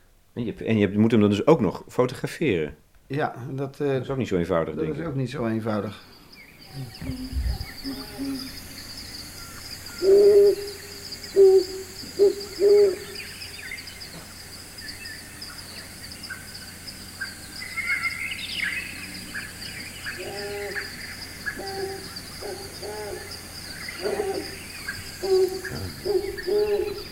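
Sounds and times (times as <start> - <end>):
faint insect hiss: 0.0 - 27.0
speech: 0.4 - 8.6, 11.4 - 13.1
birds chirping: 4.7 - 27.0
desert tawny owl hooting: 6.7 - 16.5, 17.1 - 27.0.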